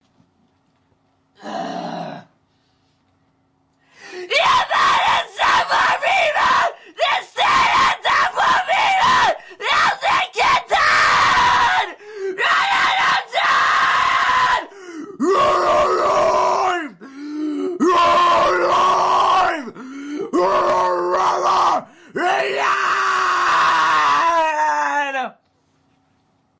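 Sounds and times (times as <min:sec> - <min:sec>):
man screaming a cappella: 0:04.0 - 0:25.3.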